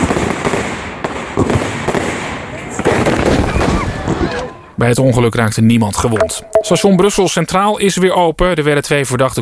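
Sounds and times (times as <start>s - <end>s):
fireworks crackling and popping at a closing fireworks show: 0.0s - 4.3s
crowd noise: 2.4s - 7.7s
speech: 4.8s - 9.4s.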